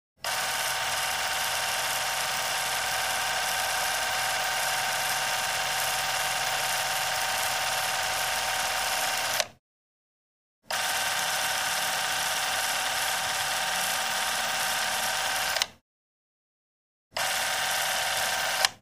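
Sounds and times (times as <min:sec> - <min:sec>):
old film projector running: 0:00.2 - 0:09.5, 0:10.7 - 0:15.8, 0:17.2 - 0:18.7.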